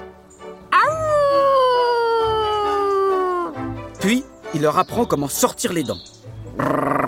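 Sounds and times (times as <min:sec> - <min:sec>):
single long wolf howl: 0:00.7 - 0:03.5
speech: 0:04.0 - 0:06.9.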